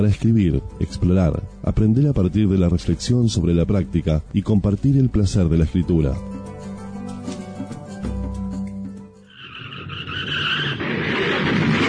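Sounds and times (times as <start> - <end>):
speech: 0.0 - 6.4
car engine humming and revving: 9.3 - 11.8
car tires screeching in a hard skid: 9.3 - 11.8.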